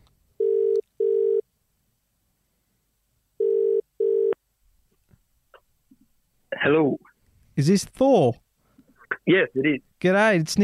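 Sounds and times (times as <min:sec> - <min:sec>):
telephone ringing tone while calling, paired electronic beeps: 0:00.4 - 0:01.4, 0:03.4 - 0:04.4
speech: 0:06.7 - 0:08.4, 0:09.3 - 0:10.6.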